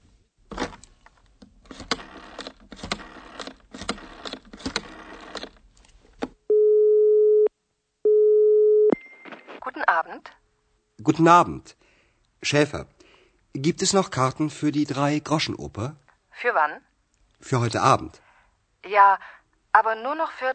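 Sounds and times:
clicking of a telephone number being dialed: 1.7 - 5.6
long steady telephone ringing tone through the line: 6.5 - 7.5, 8.1 - 9.0
speech: 10.1 - 10.4, 11.0 - 11.8, 12.4 - 12.9, 13.5 - 18.2, 18.8 - 20.5.

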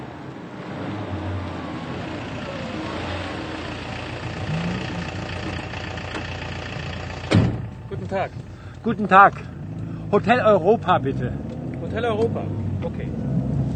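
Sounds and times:
taxi engine idling: 1.7 - 10.8
sharp clunk: 7.2 - 7.8
speech: 8.0 - 13.2.

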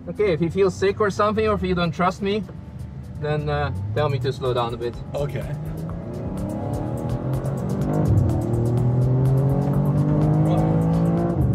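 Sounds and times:
speech: 0.0 - 2.6, 3.2 - 5.8
race car engine roaring as it accelerates: 0.0 - 11.5.

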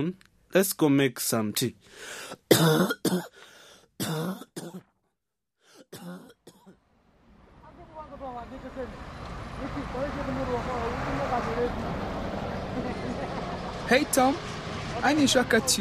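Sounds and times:
speech: 0.0 - 4.9, 5.9 - 6.4, 8.2 - 12.1, 12.8 - 15.7
person coughing harshly: 2.4 - 3.4, 4.0 - 4.9, 5.8 - 6.8.

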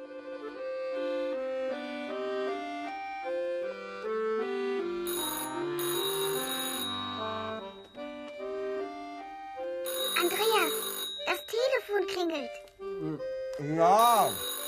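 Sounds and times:
soft music: 0.0 - 14.6
telephone ringing in a short bright trilling burst: 5.0 - 8.8, 9.8 - 12.0, 14.0 - 14.6
child speaking: 10.2 - 12.7.

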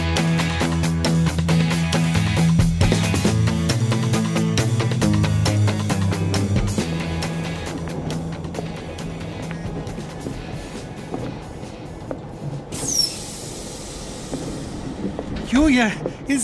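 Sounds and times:
train rumbling along at a station: 0.6 - 16.4
clattering clicks from train wheels: 6.6 - 16.4
brief high metallic squeal of a train: 12.8 - 13.3
speech: 15.8 - 16.4.

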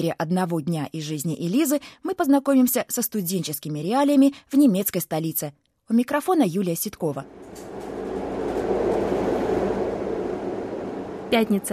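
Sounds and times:
speech: 0.0 - 7.7, 11.3 - 11.7
tram in Berlin rolling along its tracks: 7.3 - 11.7.

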